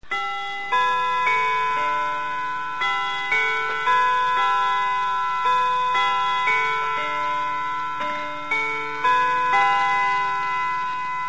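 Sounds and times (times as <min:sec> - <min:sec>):
clock chime tunes: 0:00.0 - 0:11.2.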